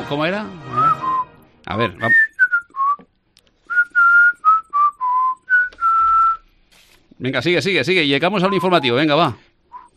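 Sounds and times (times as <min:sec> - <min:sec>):
speech: 0:00.1 - 0:00.8, 0:01.7 - 0:02.2, 0:07.2 - 0:09.5
person whistling a jaunty march-like tune: 0:00.7 - 0:01.4, 0:02.0 - 0:03.1, 0:03.7 - 0:06.4, 0:08.4 - 0:08.9, 0:09.7 - 0:09.9.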